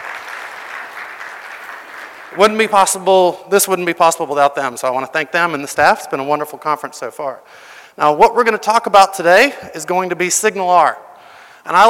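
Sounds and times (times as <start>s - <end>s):
audience applause at a conference: 0.0s - 2.6s
speech: 2.3s - 11.8s.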